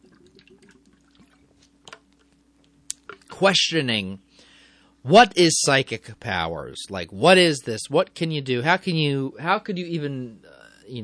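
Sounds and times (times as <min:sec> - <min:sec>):
water pouring into a glass: 0:00.0 - 0:01.6
speech: 0:03.4 - 0:04.3, 0:05.0 - 0:11.0.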